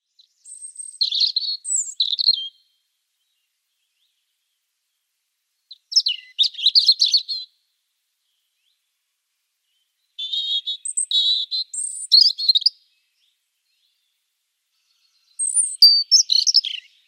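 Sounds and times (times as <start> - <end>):
male European robin singing: 0.0 - 5.0, 5.6 - 9.0, 9.6 - 17.0.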